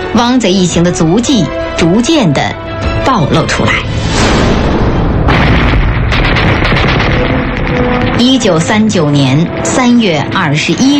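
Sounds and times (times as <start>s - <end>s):
speech: 0.2s - 4.5s, 8.2s - 10.9s
rapid gunfire bursts with booming shots: 5.3s - 9.6s.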